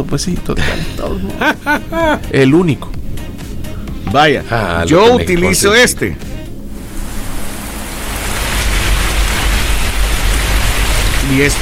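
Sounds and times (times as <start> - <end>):
speech: 0.1 - 3.0, 4.1 - 6.3, 11.3 - 11.6
laughter: 0.6 - 2.4
recorded rain sounds played for sleeping: 6.5 - 11.6.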